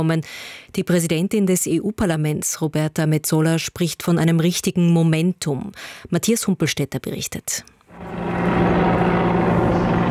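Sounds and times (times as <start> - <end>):
speech: 0.0 - 8.2
helicopter circling overhead in Tivat: 7.9 - 10.0.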